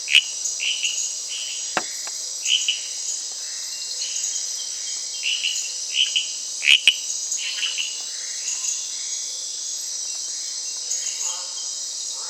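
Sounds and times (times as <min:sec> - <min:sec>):
Dendropsophus sarayacuensis frog calling: 0:00.0 - 0:03.6, 0:05.2 - 0:08.7.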